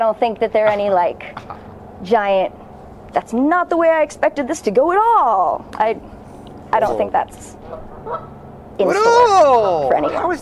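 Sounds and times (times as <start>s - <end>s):
speech: 0.0s - 6.1s, 6.7s - 10.4s
low steady hum: 0.0s - 10.4s
goose honking: 7.6s - 8.4s, 9.9s - 10.4s.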